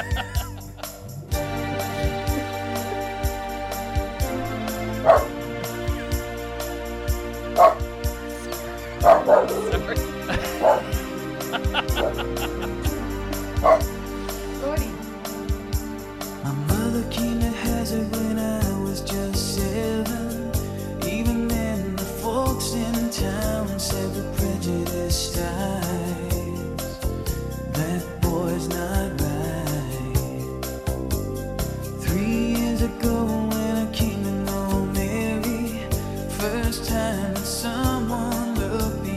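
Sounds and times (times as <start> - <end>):
laughter: 0.0 - 2.6, 9.0 - 13.4
moody song with steady instrumental tones: 0.0 - 39.1
dog barking: 5.0 - 5.4, 7.6 - 7.8, 9.0 - 10.9, 11.8 - 12.5, 13.6 - 13.9.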